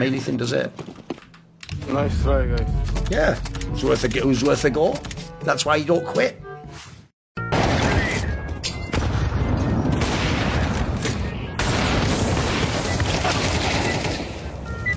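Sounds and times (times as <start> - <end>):
speech: 0.0 - 1.0, 1.9 - 6.9
incendiary explosions in a video game: 7.4 - 14.6.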